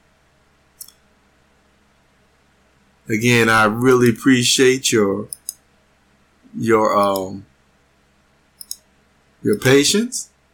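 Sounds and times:
faint steady hum: 0:00.0 - 0:10.5
speech: 0:03.1 - 0:05.4, 0:06.6 - 0:07.5, 0:09.4 - 0:10.3
computer mouse button clicks: 0:05.3 - 0:05.6, 0:07.0 - 0:07.3, 0:08.6 - 0:08.8, 0:09.5 - 0:09.7.

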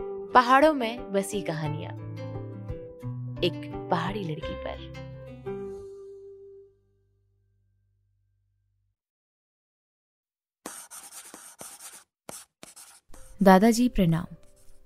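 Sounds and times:
speech: 0:00.3 - 0:02.0, 0:03.4 - 0:05.0, 0:13.4 - 0:14.4
pen scratching across paper writing a letter: 0:10.6 - 0:13.5, 0:14.3 - 0:14.8.

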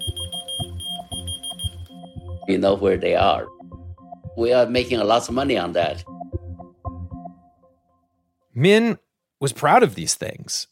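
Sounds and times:
electronic key finder beeping: 0:00.0 - 0:02.2
speech: 0:02.5 - 0:03.5, 0:04.4 - 0:06.1, 0:08.6 - 0:10.7.

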